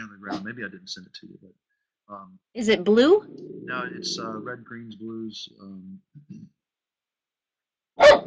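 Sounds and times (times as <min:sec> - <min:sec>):
soft low sounds: 0:00.0 - 0:06.6
speech: 0:00.2 - 0:06.5
dog barking: 0:08.0 - 0:08.2.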